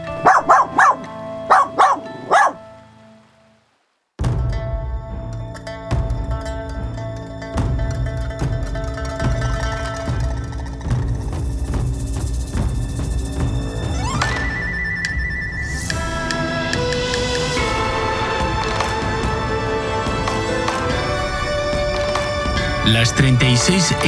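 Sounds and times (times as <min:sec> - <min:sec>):
music: 0:00.0 - 0:24.0
puppy barking and yipping: 0:00.1 - 0:02.6
speech: 0:23.2 - 0:24.0.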